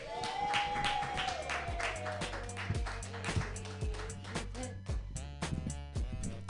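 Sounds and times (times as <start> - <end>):
crowd clapping for a comedian: 0.0 - 4.6
music: 0.0 - 6.4
low bass line: 1.6 - 6.4.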